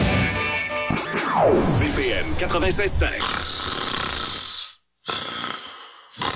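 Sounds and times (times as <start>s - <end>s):
speech: 0.9s - 3.7s
person snoring: 3.0s - 6.3s.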